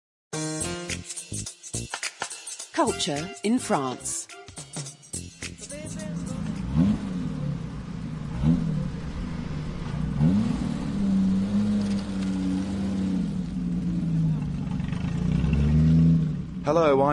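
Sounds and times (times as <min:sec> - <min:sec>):
speech: 0:02.8 - 0:04.3, 0:16.7 - 0:17.1
classic car engine revving: 0:05.3 - 0:17.1.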